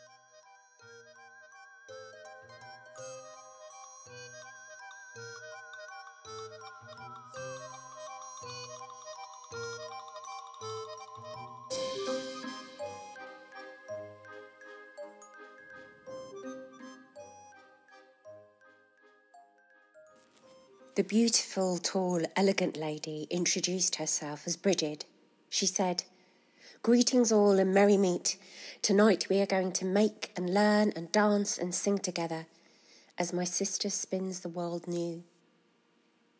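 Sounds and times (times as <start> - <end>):
bright bells ringing in a melodic pattern: 0.0 - 21.0
speech: 21.0 - 26.1, 26.7 - 32.6, 33.2 - 35.3.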